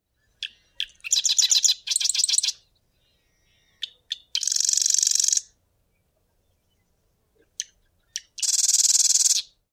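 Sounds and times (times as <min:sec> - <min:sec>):
marsh wren calling: 0:00.2 - 0:05.6, 0:07.6 - 0:09.6.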